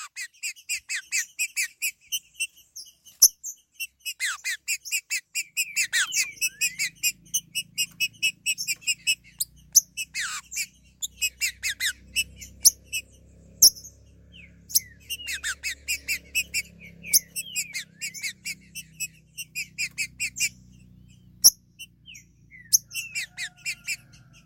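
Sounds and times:
Green-winged saltator song: 0:00.0 - 0:24.4.

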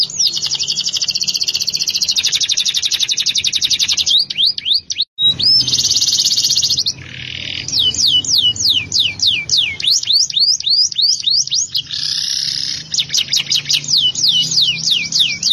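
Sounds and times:
canary song with trills, whistled notes and rising sweeps: 0:00.0 - 0:15.5.

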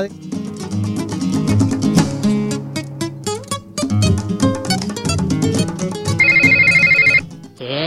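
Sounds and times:
music: 0:00.0 - 0:07.8
telephone ringing with electronic trill as a call comes in: 0:06.2 - 0:07.2.

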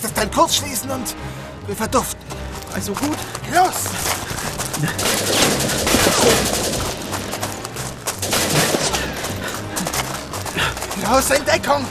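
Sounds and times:
speech: 0:00.1 - 0:06.7, 0:11.1 - 0:11.9
rapid gunfire in a shootout: 0:04.8 - 0:10.0.

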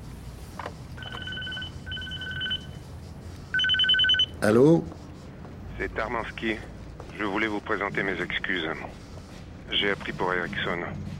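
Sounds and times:
mobile phone ringing with electronic two-tone beeping: 0:01.0 - 0:02.8, 0:03.5 - 0:04.4
speech: 0:04.4 - 0:05.0, 0:05.8 - 0:09.0, 0:09.7 - 0:11.1.

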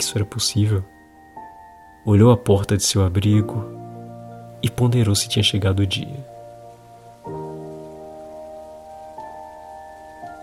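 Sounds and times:
speech: 0:00.0 - 0:01.0, 0:02.0 - 0:03.8, 0:04.6 - 0:06.3
rain falling outside: 0:02.1 - 0:10.4.

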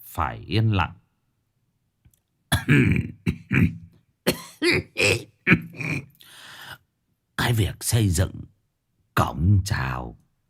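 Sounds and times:
speech: 0:00.2 - 0:01.0, 0:02.6 - 0:03.8, 0:04.6 - 0:06.1, 0:07.4 - 0:08.5, 0:09.2 - 0:10.2
elderly man coughing: 0:02.5 - 0:06.1.

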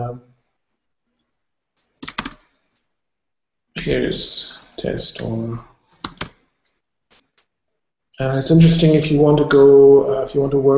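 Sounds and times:
speech: 0:00.0 - 0:00.3, 0:03.8 - 0:05.7, 0:08.2 - 0:10.7
typing on a computer keyboard: 0:02.0 - 0:02.5, 0:05.9 - 0:06.4.

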